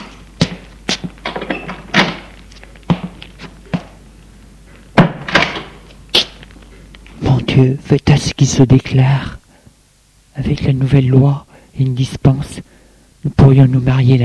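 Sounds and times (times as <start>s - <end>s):
attic door being opened with thunks and clunks: 1.2s - 2.3s, 5.0s - 5.8s
speech: 7.6s - 9.4s, 10.4s - 14.2s.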